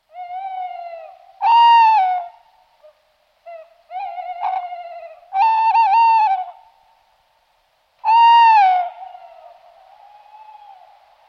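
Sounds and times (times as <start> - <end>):
owl hooting in the evening: 0.1 - 6.7, 8.0 - 11.1.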